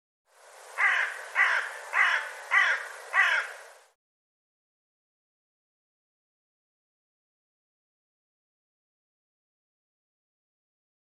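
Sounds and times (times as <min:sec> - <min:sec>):
bird cawing: 0:00.8 - 0:03.8.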